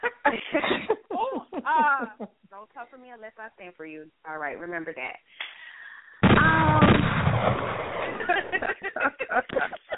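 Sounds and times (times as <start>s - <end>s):
laughter: 0.0s - 2.5s, 8.0s - 9.9s
speech: 1.8s - 5.6s, 6.4s - 9.9s
burst of gunfire: 6.2s - 8.7s.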